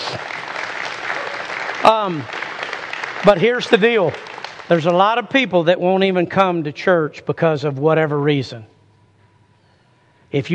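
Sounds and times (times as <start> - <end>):
audience applause: 0.0 - 5.3
speech: 0.1 - 0.4, 1.9 - 2.4, 3.2 - 8.7, 10.3 - 10.5.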